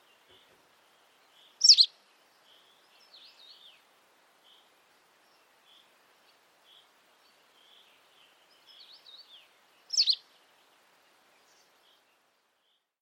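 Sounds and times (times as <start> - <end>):
bird chirping: 0.0 - 13.0
soft bird twittering: 0.1 - 3.8, 4.4 - 10.7.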